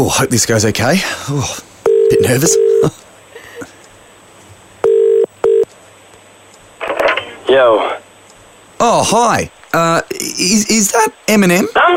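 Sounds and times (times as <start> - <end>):
speech: 0.0 - 3.0, 8.8 - 11.9
electronic telephone tones over a quiet line: 1.9 - 2.8, 4.8 - 5.6.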